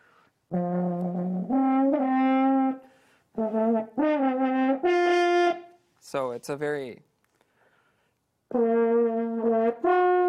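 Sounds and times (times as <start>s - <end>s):
old antique French horn playing: 0.5s - 5.8s, 8.5s - 10.2s
speech: 6.1s - 7.1s.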